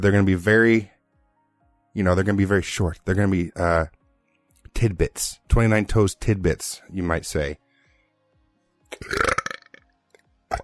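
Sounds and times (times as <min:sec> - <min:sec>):
speech: 0:00.0 - 0:00.9, 0:02.0 - 0:04.0, 0:04.7 - 0:07.6, 0:08.9 - 0:09.3
loud drawn-out burp: 0:08.9 - 0:09.9, 0:10.5 - 0:10.6.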